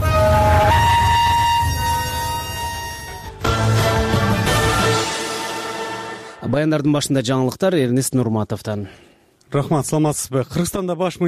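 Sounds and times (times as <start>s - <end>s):
diesel locomotive revving and setting off: 0.0s - 5.4s
speech: 6.6s - 11.2s.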